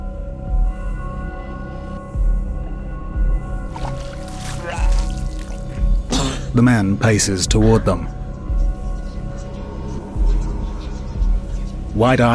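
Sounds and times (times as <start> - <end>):
droning background: 0.0 - 12.3
person vomiting water: 3.8 - 6.5
speech: 6.6 - 8.2, 12.0 - 12.3.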